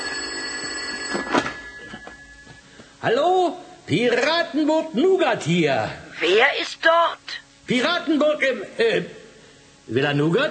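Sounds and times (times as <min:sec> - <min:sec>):
telephone ringing with a steady high electronic tone: 0:00.0 - 0:02.7
speech: 0:03.0 - 0:09.2, 0:09.9 - 0:10.4.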